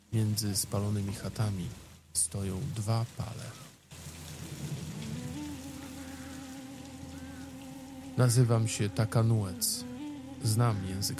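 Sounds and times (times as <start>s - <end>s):
steady rain over a burned Huron village in the forests of New France: 0.0s - 11.1s
speech: 0.1s - 3.7s, 8.2s - 11.1s.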